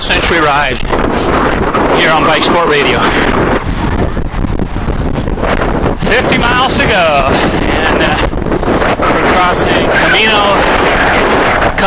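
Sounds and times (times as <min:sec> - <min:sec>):
headwind roaring across the microphone on a double-century bike ride: 0:00.0 - 0:11.8
speech: 0:00.1 - 0:03.7, 0:06.1 - 0:11.8.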